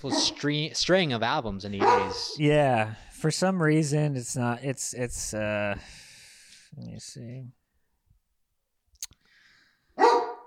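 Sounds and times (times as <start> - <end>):
dog barking: 0.0 - 0.4, 1.8 - 2.4, 10.0 - 10.4
speech: 0.0 - 6.0, 6.7 - 7.6
sharp click: 9.0 - 9.2.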